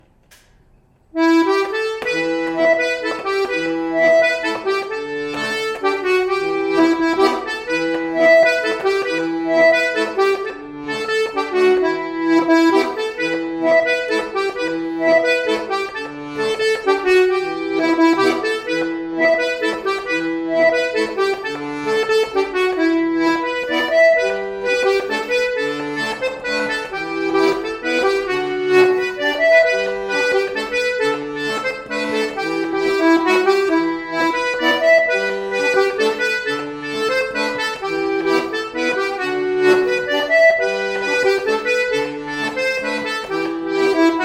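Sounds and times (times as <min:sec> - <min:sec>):
Breton mazurka tune: 0:01.2 - 0:44.2.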